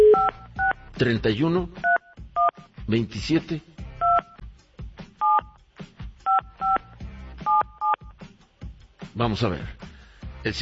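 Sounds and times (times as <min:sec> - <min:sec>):
touch-tone telephone number being dialed: 0:00.0 - 0:00.7, 0:04.0 - 0:04.4, 0:05.2 - 0:05.5, 0:06.3 - 0:06.8, 0:07.5 - 0:08.1
speech: 0:01.0 - 0:01.9, 0:02.9 - 0:03.7, 0:09.2 - 0:09.8, 0:10.4 - 0:10.6.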